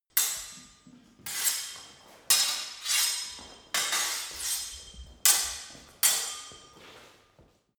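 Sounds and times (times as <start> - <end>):
sword hitting sword sequence: 0.2 - 6.7.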